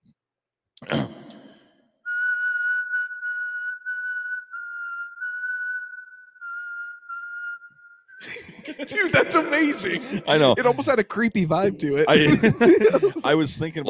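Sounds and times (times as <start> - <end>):
speech: 0.8 - 1.2, 8.6 - 13.8
person whistling a tune: 2.1 - 8.4
laughter: 8.2 - 13.8.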